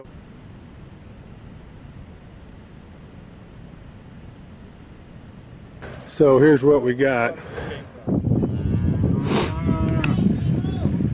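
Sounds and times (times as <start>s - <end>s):
outdoor noise: 0.0s - 11.1s
speech: 6.1s - 7.6s
cow mooing: 8.4s - 10.2s.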